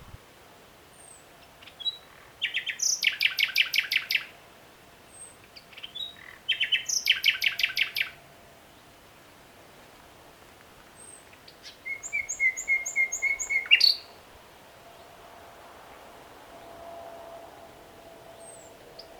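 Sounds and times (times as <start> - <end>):
common nightingale Luscinia megarhynchos singing: 1.0 - 4.3, 5.1 - 8.2, 11.0 - 14.2.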